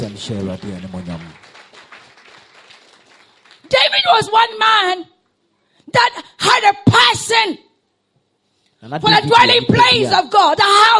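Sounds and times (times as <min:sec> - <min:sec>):
audience clapping hands in praise during a church service: 0:00.0 - 0:04.1
speech: 0:00.1 - 0:01.5, 0:04.0 - 0:05.1, 0:05.9 - 0:07.6, 0:08.8 - 0:10.9.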